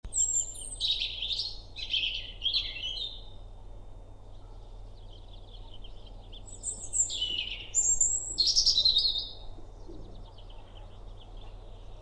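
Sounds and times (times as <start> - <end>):
European robin Erithacus rubecula singing: 0.1 - 3.3, 4.3 - 12.0
faint low hum: 0.1 - 12.0.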